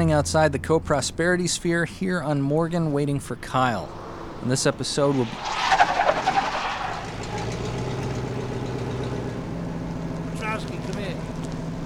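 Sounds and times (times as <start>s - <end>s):
speech: 0.0s - 5.7s
truck engine rumbling as the truck pulls up to park: 0.0s - 11.8s.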